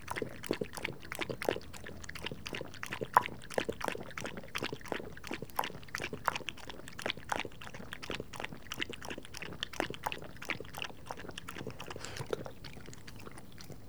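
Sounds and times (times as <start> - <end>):
dog lapping water: 0.0 - 13.8.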